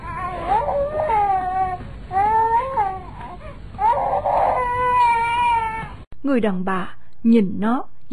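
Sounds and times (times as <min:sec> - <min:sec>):
small child crying while being picked up and held by a woman: 0:00.0 - 0:06.0
speech: 0:06.3 - 0:08.1.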